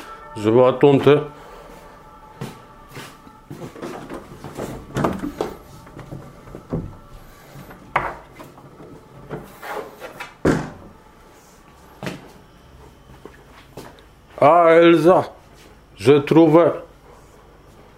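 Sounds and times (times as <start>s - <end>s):
speech: 0.4s - 1.4s, 14.8s - 15.4s, 16.0s - 16.9s
doors or cupboards opened and shut while people search the rooms: 3.5s - 11.1s
wooden knocks, clunks and rubbing sounds: 3.7s - 7.0s, 7.7s - 9.5s.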